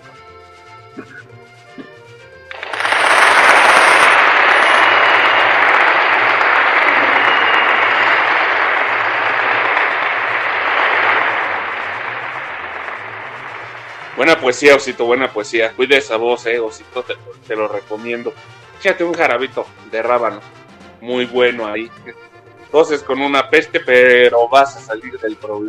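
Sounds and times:
speech: 1.0s - 1.4s, 14.2s - 25.6s
loud crowd applause: 2.5s - 15.4s.

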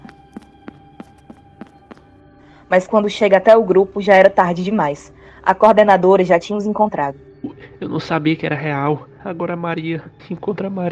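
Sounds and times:
footsteps of a boy running: 0.0s - 2.1s
speech: 2.7s - 10.9s.

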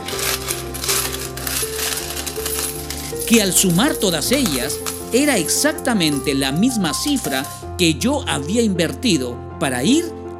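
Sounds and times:
loose coins jingling and clattering: 0.0s - 5.3s, 6.0s - 6.4s
speech: 3.3s - 10.2s.

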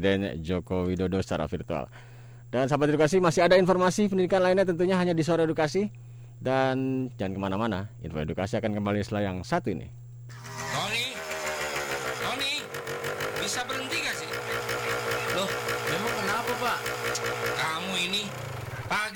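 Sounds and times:
speech: 0.0s - 10.4s
motorcycle engine revved repeatedly: 10.3s - 19.1s.

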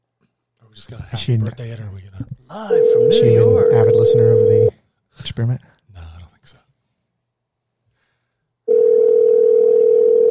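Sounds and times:
speech: 0.8s - 5.7s
steady loud telephone tone while placing a call: 2.7s - 4.7s, 8.7s - 10.2s.

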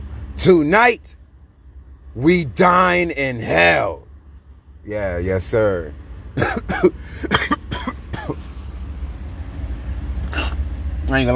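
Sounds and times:
low rumble: 0.0s - 11.3s
speech: 0.4s - 1.2s, 2.1s - 4.0s, 4.8s - 7.5s, 11.1s - 11.3s
harsh coughing fit: 6.4s - 8.4s.

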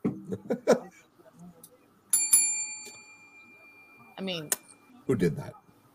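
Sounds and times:
burst of laughter: 0.2s - 1.0s
small bell ringing: 2.1s - 5.0s
speech: 4.2s - 5.6s.

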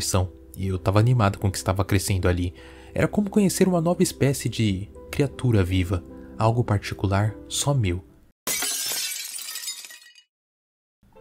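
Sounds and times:
speech: 0.0s - 8.6s
glass shattering: 8.5s - 10.3s.

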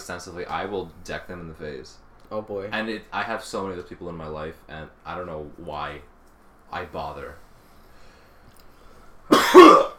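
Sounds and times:
speech: 0.1s - 6.1s, 6.7s - 7.4s
harsh cough: 9.3s - 9.9s.

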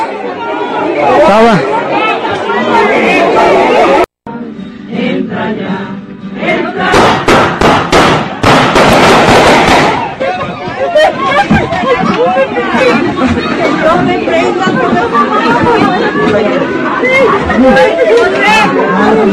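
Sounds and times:
crowd chattering and shouting: 0.0s - 19.3s
gunshots: 6.9s - 10.1s
laughter: 9.9s - 19.3s.

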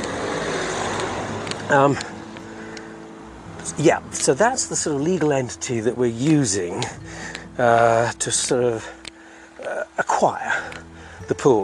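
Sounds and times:
security car driving past: 0.0s - 4.2s
speech: 1.7s - 2.2s, 3.8s - 9.0s, 10.2s - 11.6s.

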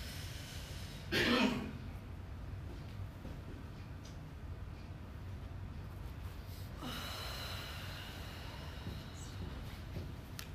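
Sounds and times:
paced breathing with slow deep inhales and exhales: 0.0s - 1.1s, 6.4s - 10.0s
low steady hum: 0.0s - 10.5s.

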